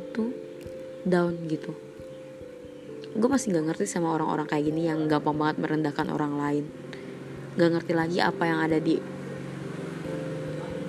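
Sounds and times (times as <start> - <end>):
speech: 1.0 - 1.9, 3.1 - 6.8, 7.6 - 9.1
motorcycle engine droning: 5.4 - 10.8.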